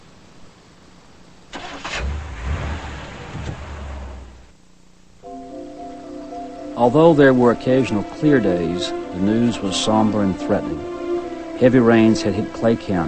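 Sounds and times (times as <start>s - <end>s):
car engine cranking and starting: 1.5s - 4.6s
speech: 6.8s - 10.9s, 11.6s - 13.0s.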